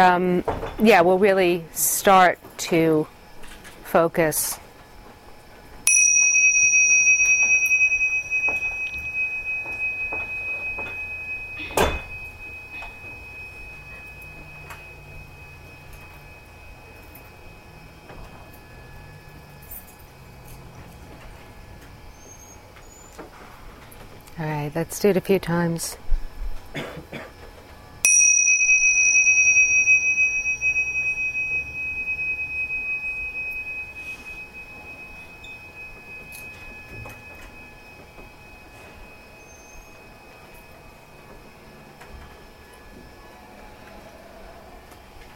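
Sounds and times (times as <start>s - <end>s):
speech: 0.0s - 3.2s, 3.9s - 4.6s, 24.8s - 26.0s
meditation bell struck during a meditation class: 5.8s - 20.7s, 28.0s - 43.0s.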